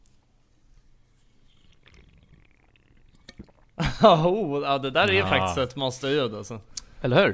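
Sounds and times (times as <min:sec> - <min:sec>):
slurping energy drink from a can: 0:01.1 - 0:03.8
speech: 0:03.4 - 0:07.3.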